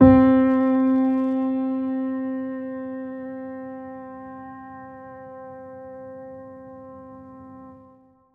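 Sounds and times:
lo-fi piano C note one shot: 0.0s - 8.0s.

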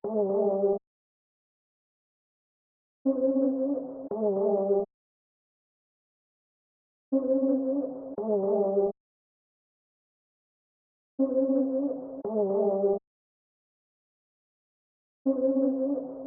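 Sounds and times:
trap vocal melody loop in G minor: 0.0s - 0.8s, 3.1s - 4.9s, 7.1s - 9.0s, 11.2s - 13.0s, 15.3s - 16.2s.

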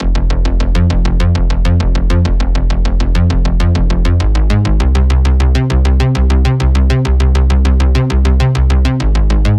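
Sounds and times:
retro bass loop in F at 100 bpm: 0.0s - 9.5s.

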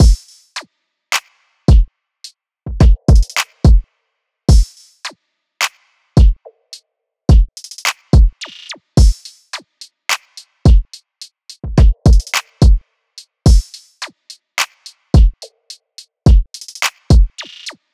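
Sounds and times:
drum loop at 107 BPM: 0.0s - 0.3s, 2.7s - 3.8s, 4.5s - 4.7s, 7.3s - 9.3s, 10.7s - 12.8s, 13.5s - 13.9s, 15.2s - 15.5s, 16.3s - 17.8s.

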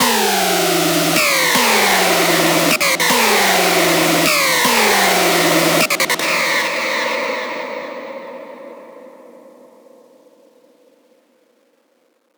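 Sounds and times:
screech music loop in E minor: 0.0s - 8.4s.

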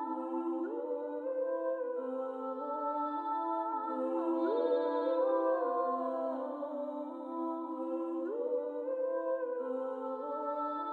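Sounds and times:
vocals loop in A minor: 0.0s - 10.9s.

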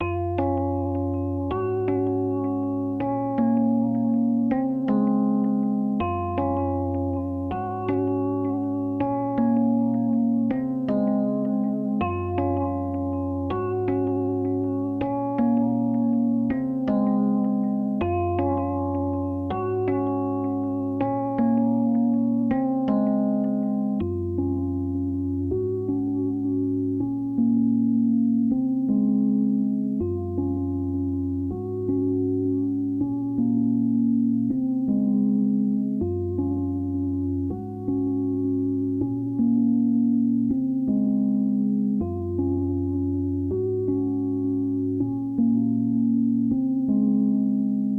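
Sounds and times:
lofi Rhodes electric piano melody in F sharp minor: 0.0s - 47.9s.

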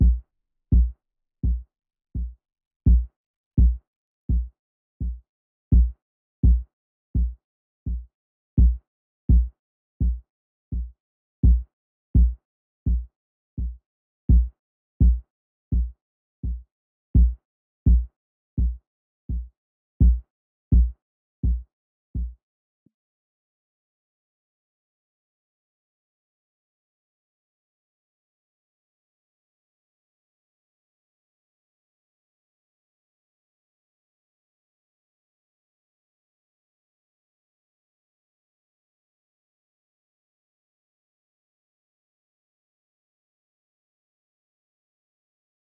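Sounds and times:
168 BPM F# minor kick drum loop: 0.0s - 1.6s, 2.2s - 6.6s, 7.2s - 11.6s, 12.2s - 16.6s, 17.2s - 21.6s, 22.2s - 22.4s.

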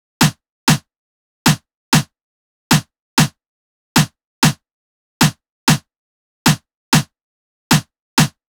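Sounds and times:
Latin drum loop with snare at 96 BPM: 1.5s - 2.1s, 2.7s - 3.4s, 4.0s - 4.6s, 5.2s - 5.9s, 6.5s - 7.1s, 7.7s - 8.4s.

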